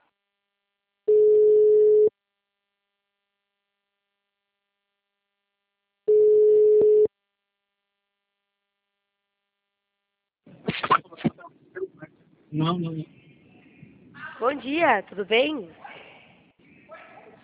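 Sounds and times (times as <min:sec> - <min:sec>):
ringing tone of an outgoing telephone call: 0:01.1 - 0:02.1, 0:06.1 - 0:07.1
speech: 0:12.6 - 0:13.2, 0:14.4 - 0:15.8.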